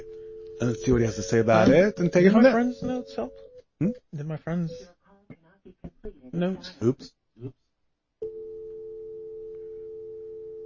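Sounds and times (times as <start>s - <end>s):
malfunctioning landline phone steady electronic tone: 0.0s - 3.6s, 8.2s - 10.6s
speech: 0.6s - 5.0s, 5.6s - 7.6s.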